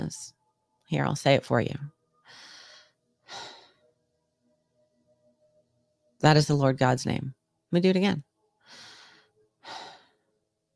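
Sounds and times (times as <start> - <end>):
speech: 0.0 - 2.4, 6.2 - 8.8
human breathing, slow and unvoiced: 2.2 - 3.8, 8.6 - 10.3.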